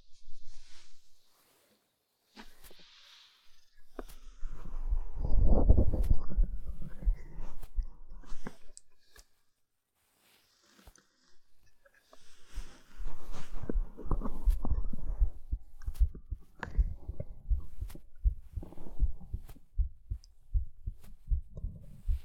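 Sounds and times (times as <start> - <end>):
heartbeat heard against a woman's chest: 4.9 - 8.7, 13.0 - 22.2.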